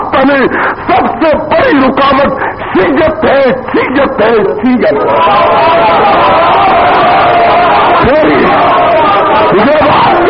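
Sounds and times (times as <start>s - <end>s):
speech: 0.1s - 6.5s
large crowd chanting slogans in unison: 5.1s - 10.1s.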